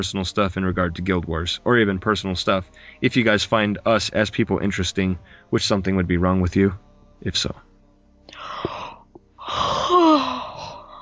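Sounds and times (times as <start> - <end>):
speech: 0.0 - 7.7
person yawning: 8.3 - 11.0.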